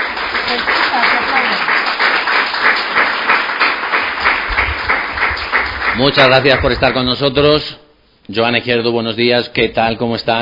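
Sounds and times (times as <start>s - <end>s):
live audience applauding: 0.0s - 7.2s
speech: 0.5s - 1.7s, 6.0s - 10.4s.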